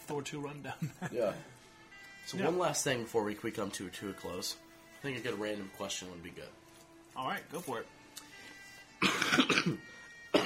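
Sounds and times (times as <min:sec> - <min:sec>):
speech: 0:00.1 - 0:01.6, 0:02.3 - 0:06.6, 0:07.2 - 0:08.0, 0:09.0 - 0:10.4
person coughing harshly: 0:09.0 - 0:10.4.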